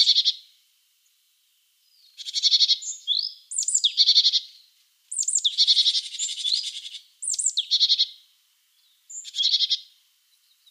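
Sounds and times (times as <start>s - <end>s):
great tit calling: 0.0s - 0.4s, 2.0s - 8.2s, 8.8s - 9.9s.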